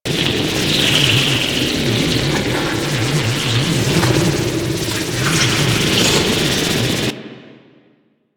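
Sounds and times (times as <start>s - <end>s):
ambience: 0.1s - 7.6s.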